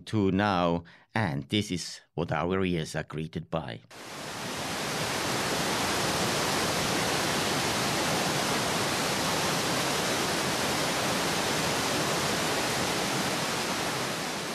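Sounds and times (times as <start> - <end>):
speech: 0.0 - 4.4
Europe's largest waterfall near Schaffhausen roaring: 4.0 - 14.5.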